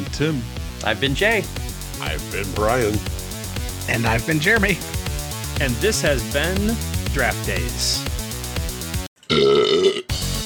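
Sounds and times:
speech: 0.1s - 3.2s, 3.9s - 5.0s, 5.6s - 8.1s
long deep burp from a person: 9.2s - 10.2s.

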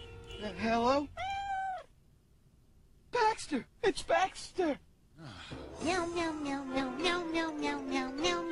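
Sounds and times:
speech: 0.4s - 1.2s, 3.5s - 8.5s
cat meowing: 1.1s - 1.9s.

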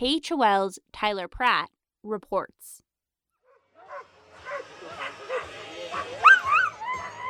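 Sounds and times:
speech: 0.0s - 2.8s
pack of sled dogs barking and yipping: 3.8s - 7.2s.

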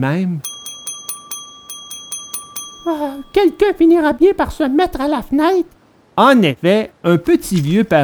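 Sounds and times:
speech: 0.0s - 0.5s, 2.9s - 8.0s
house doorbell ringing rapidly with metallic chimes: 0.4s - 4.9s.

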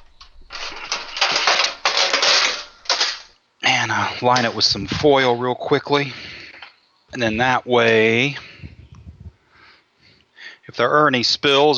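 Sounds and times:
metal baking sheet clattering as it is taken out in a kitchen: 0.0s - 3.3s
speech: 3.9s - 6.3s, 7.1s - 8.4s, 10.7s - 11.7s.

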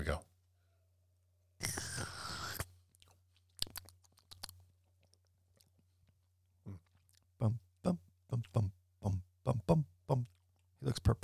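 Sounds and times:
speech: 0.0s - 0.3s, 7.4s - 11.2s
slurping sip of a drink: 1.6s - 2.7s
wet mouth clicks and smacks: 1.6s - 6.2s.

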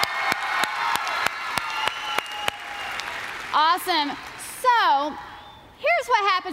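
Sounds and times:
one pair of hands clapping in an even rhythmic beat: 0.0s - 3.6s
crowd applauding: 0.0s - 4.5s
speech: 3.8s - 6.5s.

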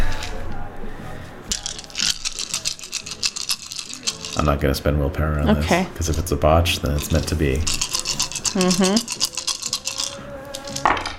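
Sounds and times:
eight dice rolled across a hard surface: 1.5s - 4.6s, 6.8s - 11.1s
speech: 4.4s - 7.9s, 8.5s - 9.3s.

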